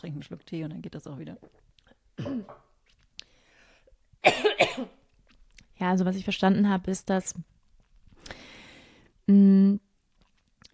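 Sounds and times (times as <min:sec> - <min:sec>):
speech: 0:00.0 - 0:02.7, 0:04.2 - 0:05.0, 0:05.8 - 0:07.5, 0:09.3 - 0:09.8
person coughing: 0:02.2 - 0:02.6, 0:04.2 - 0:05.0
person clearing throat: 0:02.2 - 0:02.7, 0:04.2 - 0:05.0.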